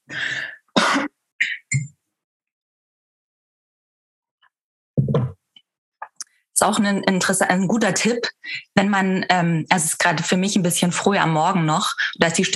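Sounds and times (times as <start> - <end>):
person clearing throat in the early morning: 0.8 - 1.8
speech: 6.6 - 12.5.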